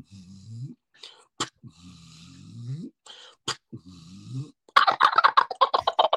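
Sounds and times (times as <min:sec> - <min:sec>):
wild turkey gobbling with a rapid rattling burst: 0:04.8 - 0:06.1.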